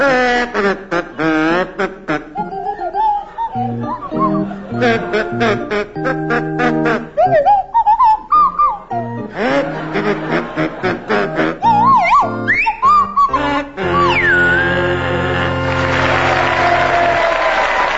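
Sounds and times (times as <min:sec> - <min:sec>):
kazoo playing a carol tune: 0:00.0 - 0:17.2
swanee whistle playing a carol tune with sliding swooping pitches: 0:02.4 - 0:04.8, 0:07.2 - 0:09.3, 0:11.6 - 0:14.9
laughter: 0:02.4 - 0:07.0, 0:09.2 - 0:12.1, 0:13.5 - 0:17.8.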